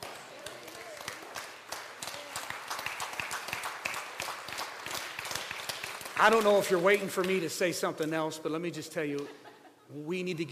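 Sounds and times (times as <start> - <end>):
crowd clapping: 0.0 - 7.7
speech: 6.2 - 10.4.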